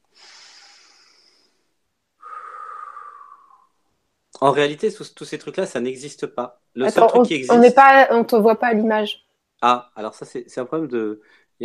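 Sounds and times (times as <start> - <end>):
long loud exhale through the mouth: 0.0 - 3.7
deep breath in: 0.1 - 3.7
speech: 4.4 - 11.6.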